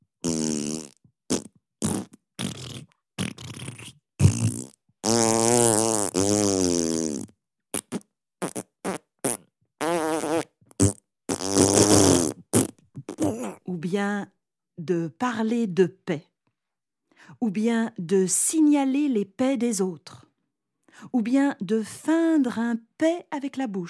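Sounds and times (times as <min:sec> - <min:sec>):
fart noises: 0:00.2 - 0:13.6
speech: 0:14.8 - 0:16.3, 0:17.4 - 0:20.2, 0:21.0 - 0:23.8.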